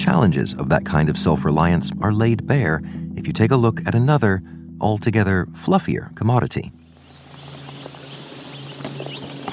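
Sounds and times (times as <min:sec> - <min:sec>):
speech: 0:00.1 - 0:06.8
chorus of chickens clucking and chirping inside a large shed on an industrial farm: 0:06.9 - 0:09.5.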